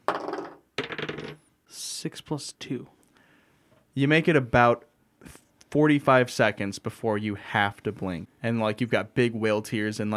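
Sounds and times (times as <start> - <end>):
dice rolled during a tabletop role-playing game: 0.0 - 1.4
speech: 1.7 - 3.0, 4.0 - 10.1.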